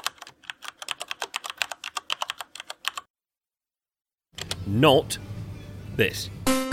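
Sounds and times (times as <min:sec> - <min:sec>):
typing on a computer keyboard: 0:00.0 - 0:03.1
speech: 0:04.7 - 0:05.3, 0:06.0 - 0:06.6.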